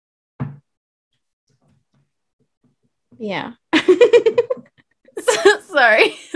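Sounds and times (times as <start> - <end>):
loud thud: 0.4 - 0.6
speech: 3.2 - 4.3, 5.7 - 6.3.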